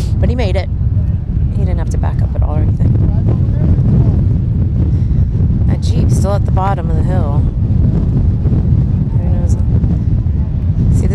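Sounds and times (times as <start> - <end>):
strong wind gusts buffeting the microphone: 0.0 - 11.1
speech: 0.2 - 0.9, 1.6 - 4.0, 5.8 - 8.7.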